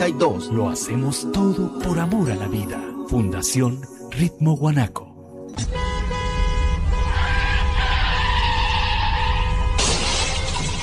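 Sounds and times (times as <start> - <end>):
speech: 0.0 - 5.8
car tires screeching: 6.9 - 9.8
car crash impact and shattering debris: 9.7 - 10.8.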